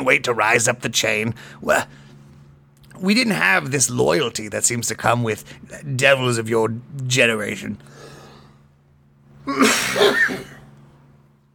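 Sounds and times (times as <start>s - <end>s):
speech: 0.0s - 2.0s, 3.0s - 8.1s, 9.5s - 10.5s
person coughing: 9.4s - 10.7s.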